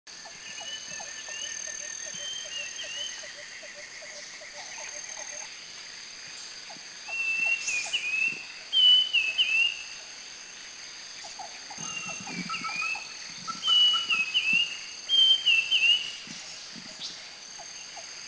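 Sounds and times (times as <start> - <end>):
banded bay cuckoo in Krung Ching Thailand: 0.2 - 5.4, 7.1 - 9.8, 11.2 - 17.0.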